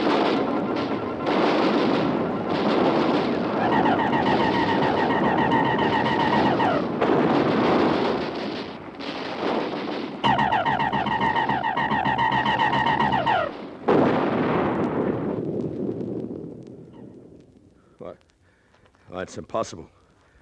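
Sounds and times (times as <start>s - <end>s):
whining tones: 0.0s - 15.7s
artillery batteries firing in a radio drama war scene: 0.0s - 17.4s
speech: 19.3s - 20.0s.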